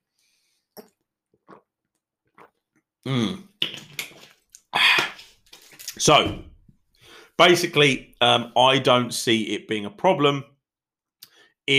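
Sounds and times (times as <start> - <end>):
person sipping water: 0.7 - 6.2
speech: 3.1 - 3.4, 6.0 - 6.5, 7.4 - 10.5.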